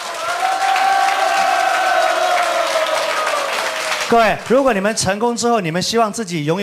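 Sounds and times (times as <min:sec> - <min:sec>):
crowd cheering and whooping: 0:00.0 - 0:04.3
large audience applauding: 0:00.0 - 0:05.0
speech: 0:04.1 - 0:06.6.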